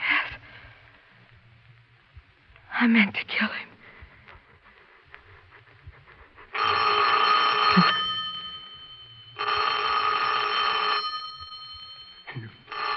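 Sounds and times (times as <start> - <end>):
speech: 2.8 - 3.7
telephone bell ringing: 6.6 - 12.9.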